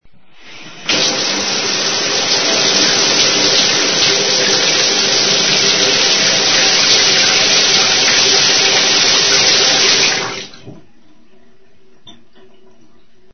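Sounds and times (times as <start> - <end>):
shower running in a house: 0.3 - 10.9.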